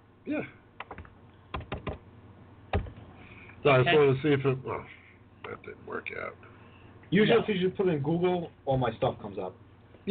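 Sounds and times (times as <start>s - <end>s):
speech: 0.2s - 1.0s, 3.6s - 6.5s, 7.1s - 10.1s
typing on a computer keyboard: 0.8s - 2.0s.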